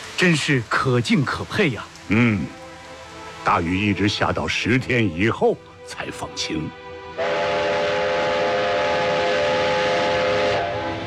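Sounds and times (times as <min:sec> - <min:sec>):
speech: 0:00.2 - 0:02.6, 0:03.4 - 0:07.3
steam train whistle: 0:07.2 - 0:11.0.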